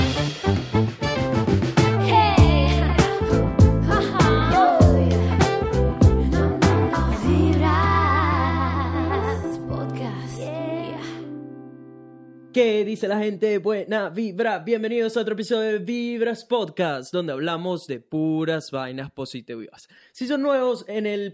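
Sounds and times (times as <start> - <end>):
punchy rhythmic hits: 0.0 - 7.0
steady bass line: 0.0 - 10.0
upbeat instrumental podcast intro jingle: 0.0 - 12.5
bright melodic synth lines: 2.1 - 12.5
speech: 12.6 - 21.3.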